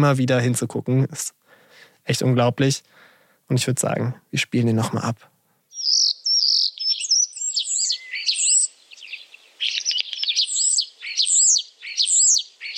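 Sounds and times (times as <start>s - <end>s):
speech: 0.0s - 1.4s, 2.0s - 5.3s
common starling singing whistles clicks and warbling: 5.7s - 12.7s.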